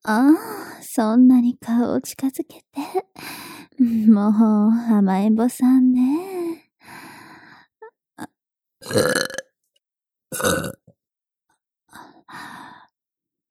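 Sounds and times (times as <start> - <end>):
speech: 0.0 - 6.3
small breaths: 3.2 - 3.8, 6.2 - 7.8, 11.9 - 12.9
drawn-out burps: 8.2 - 9.5, 10.3 - 11.0.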